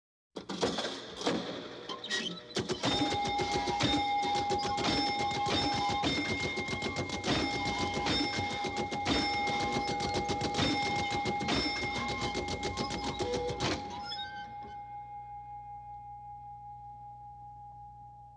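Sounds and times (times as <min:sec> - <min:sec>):
rattling gambling slot machine: 0:00.4 - 0:14.3
gambling slot machine bell: 0:02.7 - 0:15.9.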